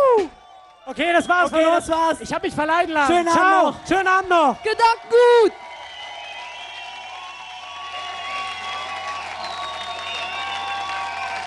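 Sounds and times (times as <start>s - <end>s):
audience shouting and whooping: 0.0s - 2.1s, 3.0s - 11.4s
speech: 0.9s - 5.6s
large audience clapping: 4.6s - 11.4s.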